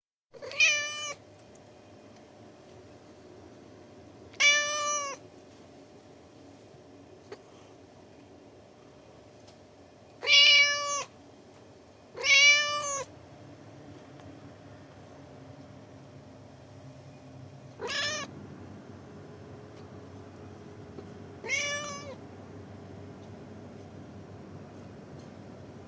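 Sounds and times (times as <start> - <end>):
Persian cat miaowing: 0.4 - 1.2, 4.3 - 5.2, 10.2 - 11.2, 12.1 - 13.1, 17.8 - 18.3, 21.4 - 22.2.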